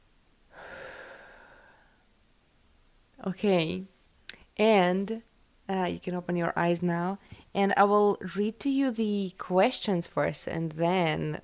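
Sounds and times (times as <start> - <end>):
person breathing in and exhaling in a guided breathing exercise: 0.5 - 2.1
speech: 3.2 - 3.9, 4.6 - 11.4.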